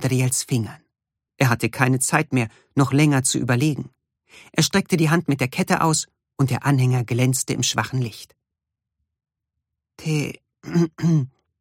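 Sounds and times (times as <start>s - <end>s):
speech: 0.0s - 0.8s, 1.4s - 8.4s, 10.0s - 11.4s
man clearing his throat: 10.6s - 11.4s.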